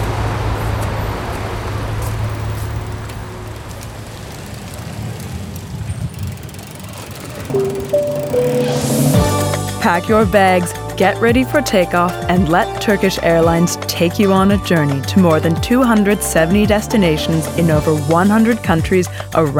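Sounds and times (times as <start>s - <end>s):
city street traffic roar in Shanghai China heard from a moving bicycle: 0.0s - 9.7s
rising whine: 7.5s - 9.7s
tonal horn-like sounds: 7.5s - 9.8s
speech: 9.8s - 19.5s.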